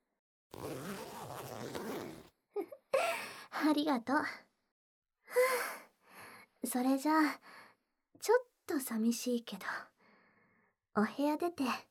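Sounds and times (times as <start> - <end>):
zipper on the back of a dress being pulled up: 0.5 - 2.3
speech: 3.6 - 4.4, 6.7 - 7.6, 8.2 - 9.9, 11.0 - 11.8.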